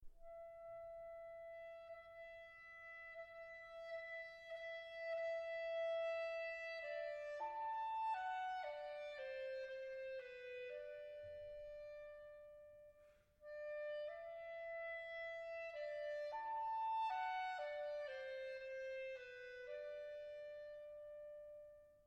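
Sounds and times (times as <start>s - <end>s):
clarinet: 0.2s - 22.0s.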